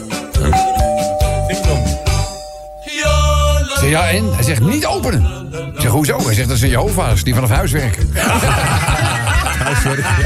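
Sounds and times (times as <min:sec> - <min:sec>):
loud rhythmic musical backing: 0:00.0 - 0:10.2
doorbell ding-dong chime: 0:00.6 - 0:03.4
speech: 0:03.9 - 0:10.2
laughter: 0:08.2 - 0:10.2.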